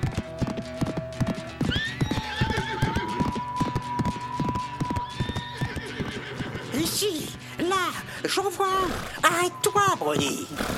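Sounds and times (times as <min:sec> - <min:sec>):
hoofbeats of a galloping horse: 0:00.0 - 0:08.0, 0:09.8 - 0:10.7
horse whinnying: 0:01.6 - 0:07.1, 0:08.7 - 0:09.3, 0:10.2 - 0:10.7
speech: 0:08.4 - 0:10.7.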